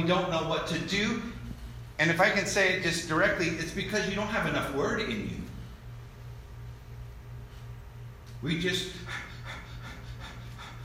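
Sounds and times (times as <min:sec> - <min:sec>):
speech: 0:00.0 - 0:01.4, 0:02.0 - 0:05.4, 0:08.4 - 0:09.2
low steady hum: 0:00.0 - 0:10.8
person imitating panting with short breathy huffs: 0:08.8 - 0:10.8.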